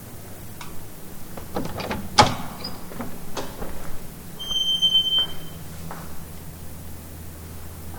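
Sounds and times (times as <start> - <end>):
house door creaking open: 1.4 - 5.8.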